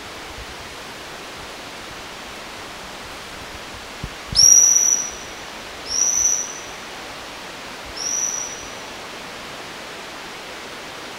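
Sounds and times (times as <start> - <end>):
background hiss: 0.0 - 11.1
Bornean whistling thrush whistling: 4.3 - 6.8, 7.9 - 8.9.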